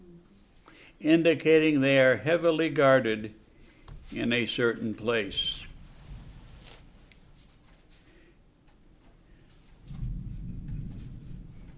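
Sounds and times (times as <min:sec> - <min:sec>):
speech: 0:01.0 - 0:03.4, 0:04.1 - 0:05.6
low thunder rumble from a nearby lightning strike: 0:09.8 - 0:11.7.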